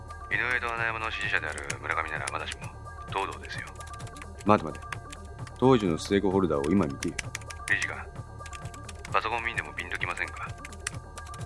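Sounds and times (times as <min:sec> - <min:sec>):
speech: 0:00.3 - 0:05.0, 0:05.6 - 0:08.2, 0:09.1 - 0:10.0
typing on a computer keyboard: 0:01.4 - 0:02.7, 0:03.4 - 0:05.6, 0:06.6 - 0:09.2, 0:09.9 - 0:11.4.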